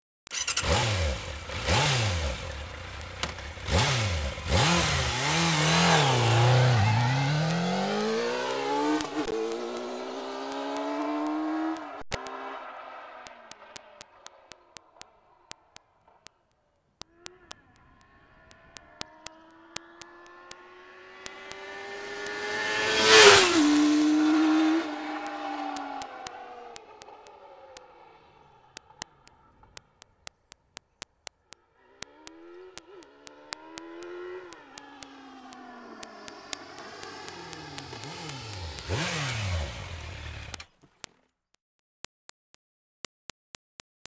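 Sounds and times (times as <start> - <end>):
Yamaha FZS 600 Fazer motorcycle engine: 0.3 - 16.3, 17.0 - 30.6, 31.8 - 40.8.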